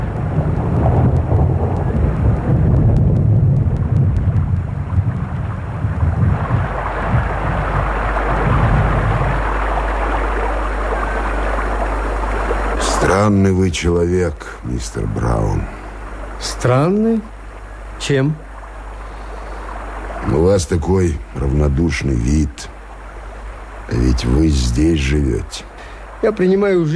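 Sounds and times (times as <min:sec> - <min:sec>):
deep rumbling thunder: 0:00.0 - 0:10.6
torrential pouring rain: 0:00.0 - 0:26.9
speech: 0:13.2 - 0:15.8, 0:16.4 - 0:17.4, 0:18.0 - 0:18.5, 0:20.3 - 0:22.8, 0:23.9 - 0:26.9.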